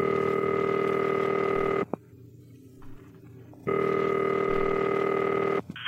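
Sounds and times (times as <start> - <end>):
telephone dial tone: 0.0 - 1.9, 3.7 - 5.7.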